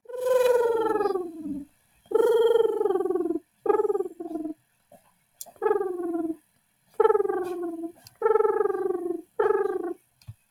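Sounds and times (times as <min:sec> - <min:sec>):
dove calls: 0:00.1 - 0:04.5, 0:07.0 - 0:10.0.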